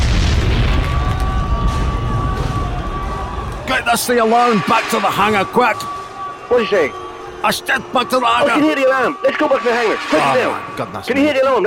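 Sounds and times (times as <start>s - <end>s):
bomb explosion roar: 0.0s - 5.6s
speech: 3.9s - 11.6s.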